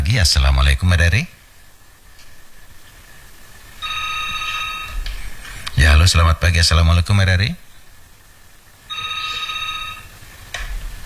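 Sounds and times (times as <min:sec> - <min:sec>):
low hum: 0:00.0 - 0:11.0
speech: 0:00.1 - 0:01.4, 0:06.0 - 0:07.7
telephone ringing with a buzzing electronic tone: 0:03.7 - 0:07.5, 0:08.9 - 0:11.0.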